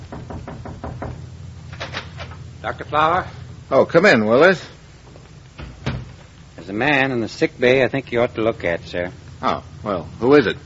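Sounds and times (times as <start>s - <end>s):
knocking on a medical officer's door aboard a warship: 0.0s - 1.2s
steady hiss: 0.0s - 10.6s
speech: 2.6s - 4.7s, 6.7s - 10.6s.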